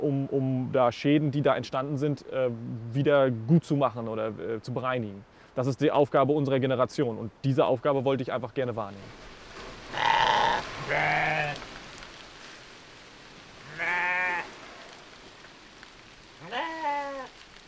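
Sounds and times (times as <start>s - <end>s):
speech: 0.0s - 9.3s, 10.9s - 11.6s
steady hiss: 0.0s - 17.6s
sheep and lambs bleating: 9.9s - 11.6s, 13.6s - 14.5s, 16.4s - 17.3s.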